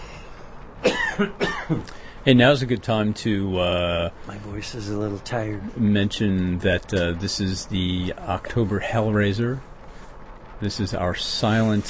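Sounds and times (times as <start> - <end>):
harsh rough throaty coughs: 0.8 - 1.9
speech: 1.2 - 9.7, 10.6 - 11.8.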